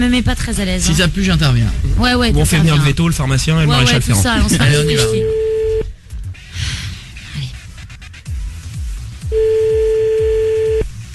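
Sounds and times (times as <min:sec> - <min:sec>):
speech: 0:00.0 - 0:05.4
telephone tone after a call is hung up: 0:04.6 - 0:05.9, 0:09.3 - 0:10.9.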